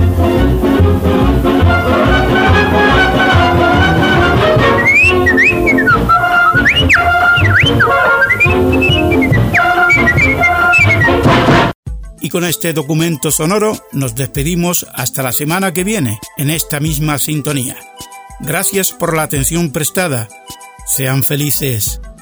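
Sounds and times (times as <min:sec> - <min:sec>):
loud orchestral music track: 0:00.2 - 0:06.5
bright whistled melody with sliding swooping notes: 0:02.9 - 0:11.3
speech: 0:12.5 - 0:22.2.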